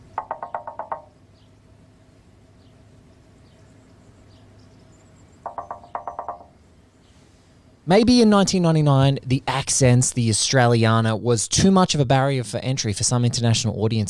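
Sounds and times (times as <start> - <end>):
low steady hum: 0.0 - 14.0
light knocking on a car window: 0.2 - 1.1, 5.5 - 6.5
speech: 7.9 - 14.0.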